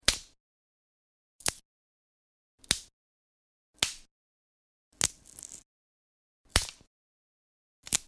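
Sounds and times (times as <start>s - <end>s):
twigs snapping and breaking: 5.0s - 5.6s, 6.5s - 6.8s, 7.8s - 8.0s.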